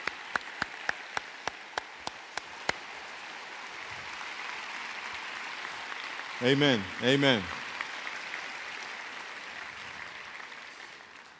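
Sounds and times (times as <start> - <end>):
one pair of hands clapping sharply: 0.0 - 2.9, 5.0 - 11.3
audience applause: 0.0 - 11.3
speech: 6.4 - 7.6.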